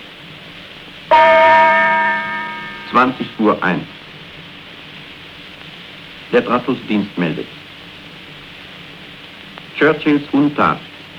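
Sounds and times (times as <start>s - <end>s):
speech: 1.1s - 1.6s, 2.9s - 4.0s, 6.3s - 7.6s, 9.8s - 10.9s
radio time signal gong: 1.1s - 3.7s.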